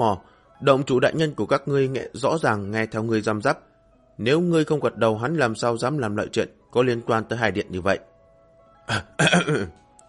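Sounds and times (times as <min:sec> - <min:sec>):
speech: 0:00.0 - 0:08.1, 0:08.9 - 0:09.8
dry coughing clearing the throat: 0:08.9 - 0:09.8.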